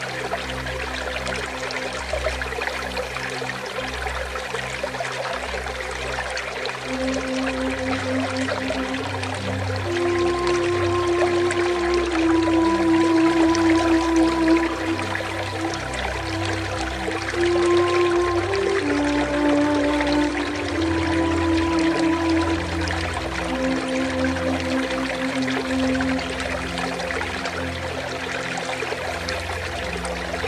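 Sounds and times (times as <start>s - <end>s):
water fountain splashing: 0.0s - 30.4s
soft flute music with long held notes: 6.8s - 30.4s.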